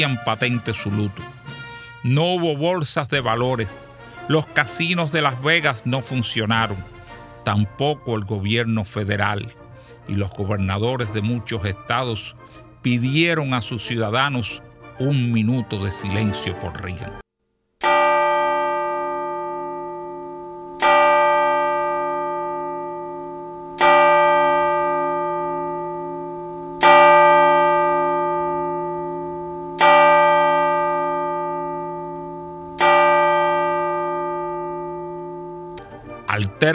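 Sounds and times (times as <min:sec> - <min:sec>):
speech: 0:00.0 - 0:01.3, 0:02.0 - 0:17.2
single large church bell tolling at a funeral: 0:17.8 - 0:36.5.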